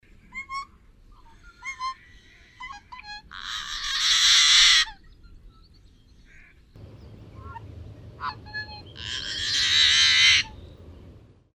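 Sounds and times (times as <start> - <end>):
yellow-headed blackbird accenting call: 3.4 - 11.5.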